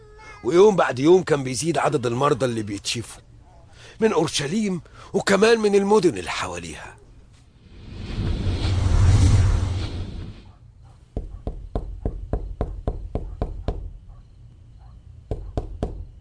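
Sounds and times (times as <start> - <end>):
speech: 0.4 - 3.3, 4.0 - 7.0
whoosh: 7.6 - 10.6
knocking on a door: 11.2 - 14.0, 15.3 - 16.1.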